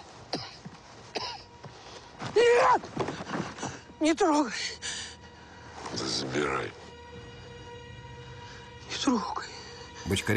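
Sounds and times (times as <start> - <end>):
soldier coughing: 0.3 - 1.5
speech: 2.4 - 3.0, 4.0 - 4.8, 6.0 - 6.8, 9.0 - 9.5, 10.1 - 10.3.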